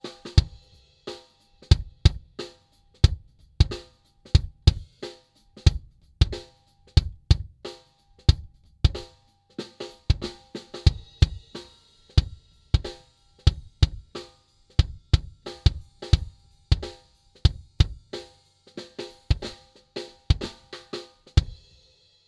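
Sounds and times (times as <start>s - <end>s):
kick drum solo recorded inside in front of the drumhead: 0.4s - 0.7s, 1.6s - 2.4s, 3.0s - 5.0s, 5.6s - 7.6s, 8.2s - 9.2s, 10.0s - 11.6s, 12.2s - 18.1s, 19.3s - 19.6s, 20.3s - 20.6s, 21.4s - 21.8s.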